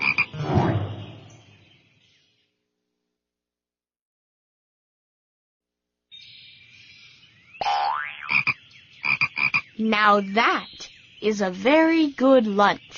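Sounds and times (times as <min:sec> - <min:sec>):
frog croaking with sharp ringing croaks and a rising chirp: 0:00.0 - 0:00.4, 0:07.6 - 0:09.8
speech: 0:09.8 - 0:12.9.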